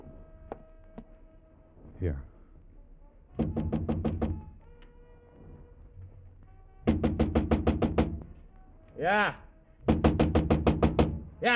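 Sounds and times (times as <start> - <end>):
faint noise: 0.0 - 11.5
speech: 2.0 - 2.3, 9.0 - 9.4
loud rapid knocking on a door at the end of a third-floor hall: 3.4 - 4.6, 6.8 - 8.4, 9.8 - 11.4.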